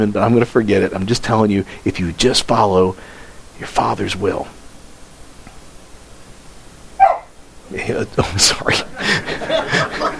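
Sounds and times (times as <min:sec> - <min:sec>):
speech: 0:00.0 - 0:04.6, 0:07.7 - 0:10.0
dog barking: 0:07.0 - 0:07.3
laughter: 0:08.0 - 0:10.1.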